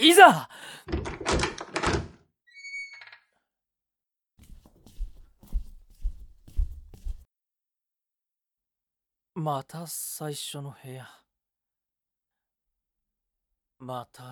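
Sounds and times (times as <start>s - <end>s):
speech: 0.0s - 1.4s, 9.4s - 11.2s, 13.8s - 14.3s
door clunking open with squeaky hinge creak: 0.9s - 3.2s
steady footsteps walking through a door: 4.4s - 7.2s.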